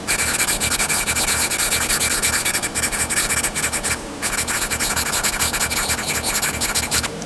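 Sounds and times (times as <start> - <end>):
swirling pen drawing: 0.1 - 7.1.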